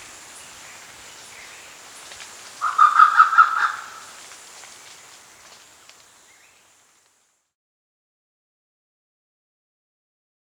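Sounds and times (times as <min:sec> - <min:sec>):
Grey peacock-pheasant barking call: 0:00.0 - 0:04.3
faint background hiss: 0:00.0 - 0:07.6.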